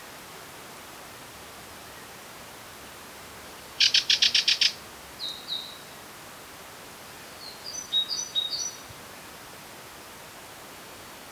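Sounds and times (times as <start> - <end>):
steady background hiss: 0.0 - 11.3
Parus major great tit calls: 3.8 - 5.6.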